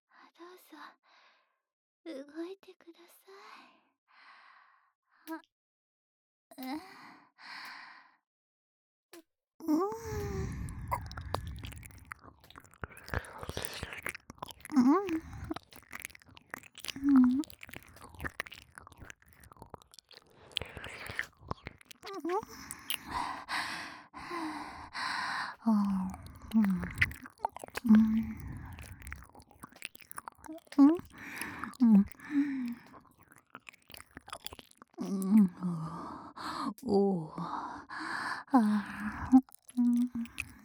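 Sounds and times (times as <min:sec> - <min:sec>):
speech: 0:02.0 - 0:03.8, 0:05.3 - 0:05.5
breathy sounds: 0:09.7 - 0:40.6
wet ear-licking mouth sounds with slurping and smacking: 0:09.9 - 0:36.8, 0:38.5 - 0:40.6.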